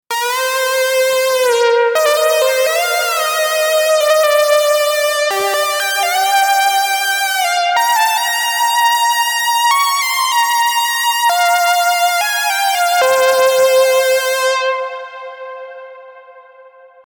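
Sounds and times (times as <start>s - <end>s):
saw lead synth with light vibrato: 0.1s - 16.6s.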